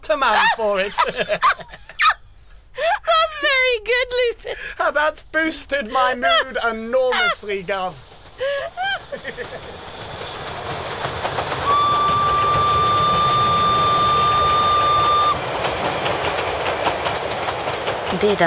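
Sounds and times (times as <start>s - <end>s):
speech: 0.1s - 2.1s, 3.6s - 9.9s, 18.2s - 18.4s
laughter: 0.2s - 9.9s
passing train rumbling and clattering on rails: 5.7s - 18.4s
long sustained train whistle: 10.2s - 15.9s.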